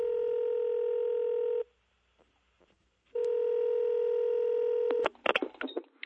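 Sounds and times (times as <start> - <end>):
long steady electronic telephone tones: 0.0 - 1.7, 3.2 - 5.1.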